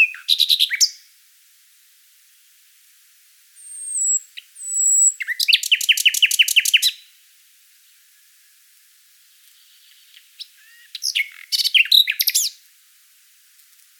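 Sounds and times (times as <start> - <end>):
Common nightingale song: 0.0 - 1.2, 3.4 - 13.9.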